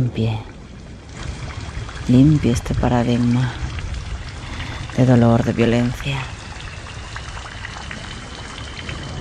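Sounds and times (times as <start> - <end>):
speech: 0.0 - 0.5, 2.1 - 3.6, 5.0 - 6.4
steady autumn rain pouring: 0.0 - 9.1.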